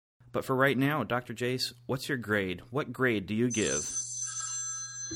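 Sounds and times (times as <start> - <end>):
speech: 0.4 - 4.0
telephone ringing with electronic trill: 3.5 - 5.1.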